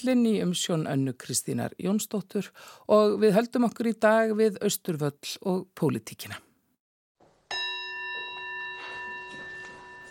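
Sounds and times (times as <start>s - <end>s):
speech: 0.0s - 6.5s
handbell rung by the president of the Icelandic parliament: 7.5s - 10.0s.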